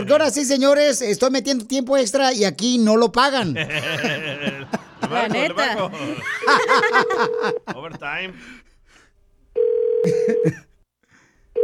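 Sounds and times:
speech: 0:00.0 - 0:08.7, 0:10.0 - 0:10.7
laughter: 0:03.4 - 0:08.5, 0:10.1 - 0:10.6
telephone ringback tone on an unanswered outgoing call: 0:06.4 - 0:07.7, 0:09.6 - 0:10.4.

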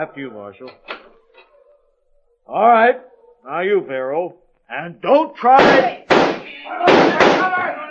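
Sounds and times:
speech: 0:00.0 - 0:01.5, 0:02.5 - 0:07.8
gunshots: 0:05.6 - 0:07.7.

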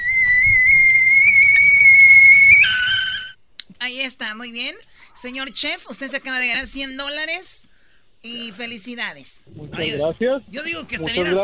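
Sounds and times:
whistling pot of boiling water: 0:00.0 - 0:03.4
speech: 0:03.9 - 0:11.4.

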